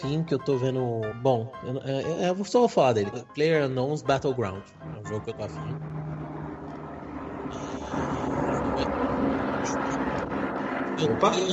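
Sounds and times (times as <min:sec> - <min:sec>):
speech: 0:00.0 - 0:06.2, 0:07.5 - 0:10.4, 0:11.0 - 0:11.5
airplane engine drone: 0:04.7 - 0:11.5.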